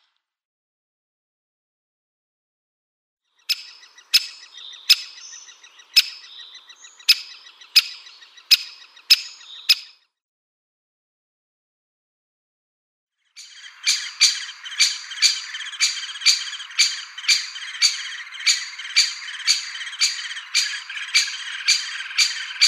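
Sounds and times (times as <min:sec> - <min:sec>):
Great Spotted Woodpecker calling: 0:03.4 - 0:09.9, 0:13.4 - 0:22.6.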